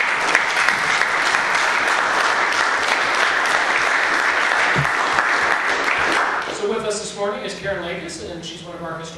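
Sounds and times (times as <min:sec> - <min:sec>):
room full of people applauding: 0:00.0 - 0:06.6
speech: 0:07.2 - 0:09.1.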